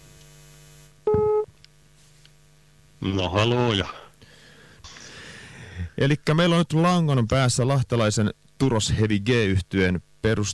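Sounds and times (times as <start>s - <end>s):
faint hum: 0.0s - 10.5s
electronic telephone tone as a call is placed: 1.1s - 1.5s
speech: 3.0s - 4.0s, 6.0s - 10.5s.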